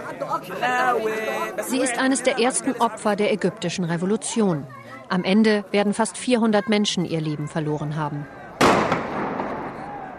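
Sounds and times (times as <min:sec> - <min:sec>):
speech: 0:00.2 - 0:08.4
tear gas grenades detonating at a street protest during the Egyptian revolution: 0:08.6 - 0:09.8.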